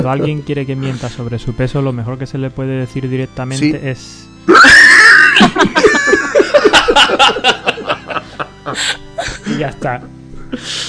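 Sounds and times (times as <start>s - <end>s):
speech: 0.0s - 5.9s, 6.9s - 10.8s
short high-pitched shriek: 4.5s - 5.4s
rapid pulsing laughter: 4.5s - 9.4s.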